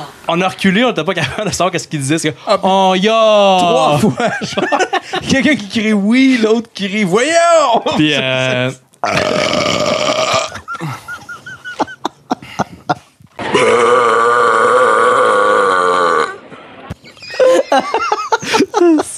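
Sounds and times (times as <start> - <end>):
speech: 0.3 - 9.9
people laughing: 3.7 - 5.7, 10.1 - 13.7, 17.0 - 19.1
long loud burps: 9.0 - 10.8, 13.4 - 16.4.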